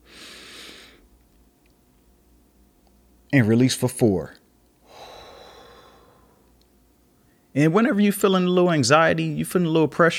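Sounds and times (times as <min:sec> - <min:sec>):
deep inhaled breath during a guided breathing exercise: 0:00.0 - 0:01.0, 0:04.8 - 0:06.5
speech: 0:03.3 - 0:04.4, 0:07.6 - 0:10.1.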